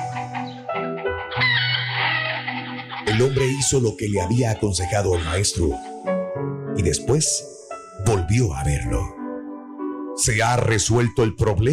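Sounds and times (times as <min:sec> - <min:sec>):
crowded flock of chickens clucking and squawking: 0:00.0 - 0:05.7
speech: 0:03.2 - 0:05.9, 0:06.8 - 0:09.2, 0:10.2 - 0:11.7.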